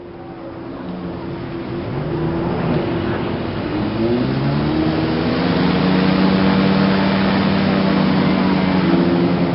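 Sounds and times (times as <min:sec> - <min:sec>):
jet ski engine revving on the Yalu River: 0:00.0 - 0:09.5.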